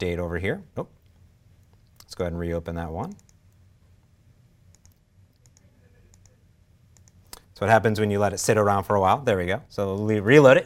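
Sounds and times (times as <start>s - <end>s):
speech: 0.0s - 1.0s, 2.1s - 3.3s, 7.6s - 10.6s
steady low hum: 0.0s - 10.6s
computer keyboard keystrokes: 4.7s - 6.3s.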